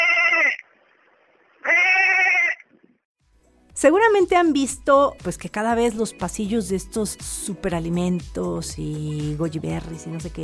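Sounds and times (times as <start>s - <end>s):
sheep bleating: 0.0s - 0.6s, 1.6s - 2.6s
speech: 3.8s - 10.4s.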